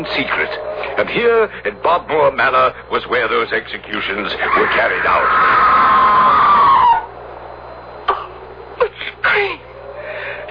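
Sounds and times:
speech: 0.0s - 6.0s
low hum: 0.0s - 10.4s
long wavering distant scream: 4.4s - 7.2s.

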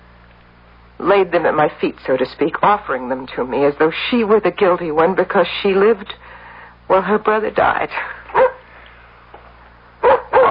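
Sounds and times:
speech: 1.0s - 6.3s, 6.9s - 8.5s
dog barking at the door: 8.3s - 8.6s, 10.0s - 10.4s.

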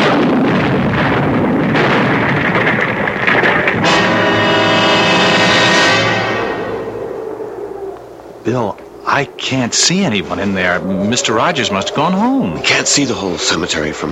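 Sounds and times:
loud explosion: 0.0s - 7.0s
ringing droning tone: 4.9s - 13.8s
speech: 8.4s - 14.1s.

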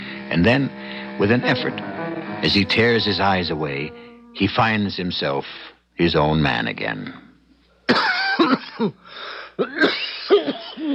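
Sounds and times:
wheezy breathing: 0.0s - 1.2s, 9.0s - 9.6s
speech: 0.3s - 7.2s, 8.8s - 10.9s
harsh cough: 7.9s - 9.0s, 9.6s - 10.9s.

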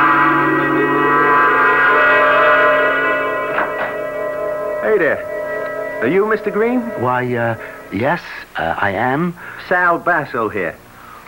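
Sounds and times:
doorbell chime ringing with bright layered tones: 0.0s - 8.4s
speech: 6.0s - 10.8s.

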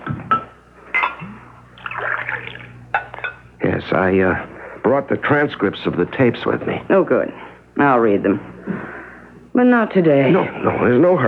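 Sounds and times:
faint low hum: 0.0s - 11.2s
glass clinking: 0.3s - 3.5s
water pouring into a glass: 1.8s - 3.3s
speech: 3.8s - 8.9s, 9.6s - 11.2s.

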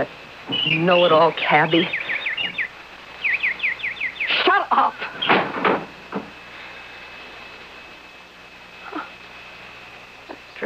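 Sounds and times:
speech: 0.0s - 2.0s, 4.7s - 5.3s
nightingale chirping: 0.0s - 5.5s.

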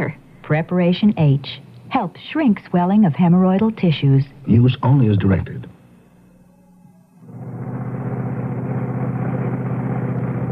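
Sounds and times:
speech: 0.0s - 5.7s
car engine starting up and idling: 7.4s - 10.4s.

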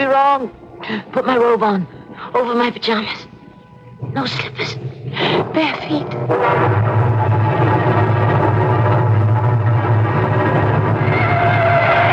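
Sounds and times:
heavy rain: 0.0s - 12.1s
speech: 0.1s - 3.3s, 4.2s - 7.0s
car engine droning on a wet road: 3.9s - 12.1s
tires hissing and spraying on a wet road: 10.2s - 12.1s.

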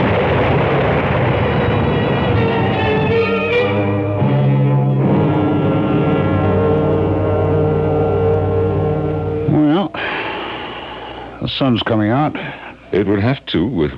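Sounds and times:
tree falling and crashing down in a storm: 0.0s - 7.0s
storm wind roaring: 0.0s - 9.8s
speech: 11.6s - 13.9s.

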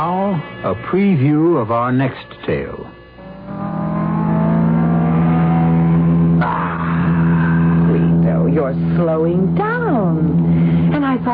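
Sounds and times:
speech: 0.0s - 3.6s, 8.7s - 10.4s
car engine labouring and revving: 3.1s - 11.3s.

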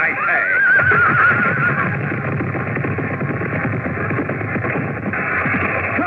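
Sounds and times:
crowd noise: 0.0s - 6.0s
horse whinnying during a joust charge: 0.1s - 2.1s.

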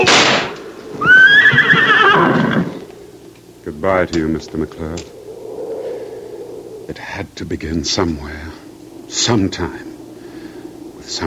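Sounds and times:
horse neighing: 0.8s - 3.1s
low rumbling background: 2.6s - 11.2s
speech: 3.8s - 5.2s, 6.9s - 8.5s, 9.1s - 9.9s, 11.1s - 11.2s.

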